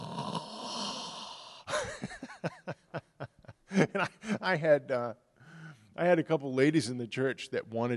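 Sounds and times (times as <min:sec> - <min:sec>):
voice imitating loud snoring of an elderly man asleep with mouth open: 0:00.0 - 0:01.7
laughter: 0:01.7 - 0:04.6
speech: 0:03.8 - 0:05.2, 0:06.0 - 0:07.9.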